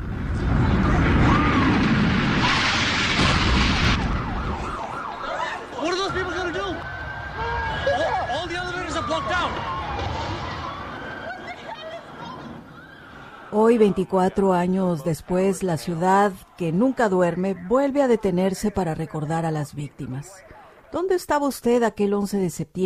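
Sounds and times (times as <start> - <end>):
loud busy street rumble: 0.0 - 21.0
emergency vehicle sirens wailing: 0.0 - 21.1
speech: 13.7 - 22.8.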